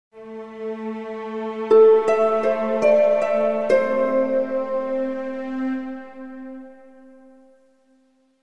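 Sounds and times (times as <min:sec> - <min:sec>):
positive harp logo stinger: 0:01.7 - 0:07.6.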